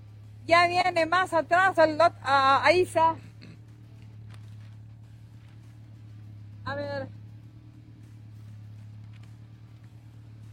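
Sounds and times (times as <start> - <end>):
rally car engines rumbling at the start line in Muyurina: 0.0 - 10.5
speech: 0.5 - 3.3, 6.7 - 7.2.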